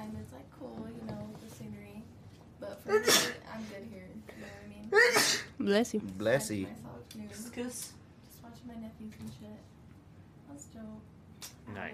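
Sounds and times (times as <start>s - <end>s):
speech: 2.8s - 8.0s, 11.7s - 11.9s
person sneezing: 2.9s - 3.4s, 4.9s - 5.6s.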